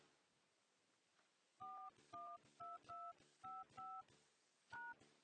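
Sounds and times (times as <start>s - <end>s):
touch-tone phone keypad beeps dialing an account number into a conference line: 1.6s - 4.1s, 4.7s - 5.0s.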